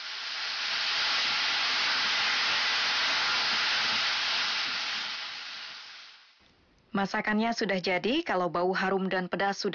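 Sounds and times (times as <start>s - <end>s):
soy sauce sizzling with carrots in a hot pan for kimpira: 0.0s - 6.4s
speech: 7.0s - 9.7s.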